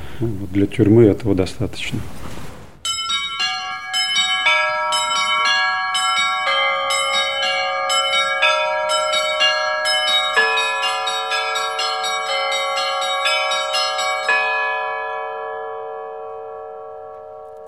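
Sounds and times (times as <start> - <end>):
speech: 0.2 - 2.3
small set of three church bells ringing: 2.8 - 17.6.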